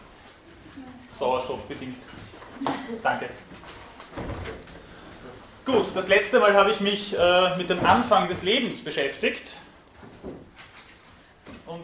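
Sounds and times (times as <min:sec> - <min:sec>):
low noise: 0:00.0 - 0:11.8
speech: 0:01.1 - 0:04.2, 0:05.7 - 0:09.6
door swinging shut with a soft dull thud: 0:04.1 - 0:04.7.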